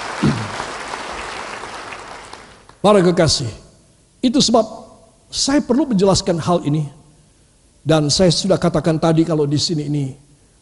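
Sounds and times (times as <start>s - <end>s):
large audience applauding: 0.0s - 2.7s
speech: 2.8s - 3.6s, 4.2s - 7.0s, 7.8s - 10.3s.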